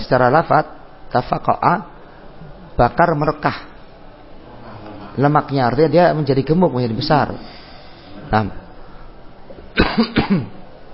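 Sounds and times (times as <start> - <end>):
speech: 0.1 - 1.9, 2.8 - 3.7, 5.2 - 7.6, 8.3 - 8.6, 9.8 - 10.6
man coughing during a grammar lesson: 9.8 - 10.6.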